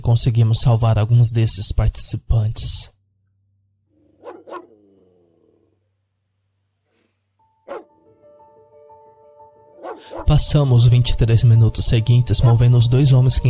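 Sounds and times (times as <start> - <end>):
speech: 0.0 - 3.0, 10.1 - 13.4
dogs barking sharply and loudly in short bursts: 4.0 - 5.7, 7.6 - 8.1, 9.8 - 10.4.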